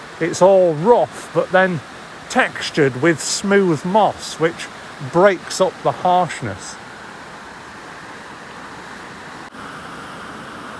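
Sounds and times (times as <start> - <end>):
river water crashing over rocks in a woodland: 0.0 - 10.7
speech: 0.2 - 6.8.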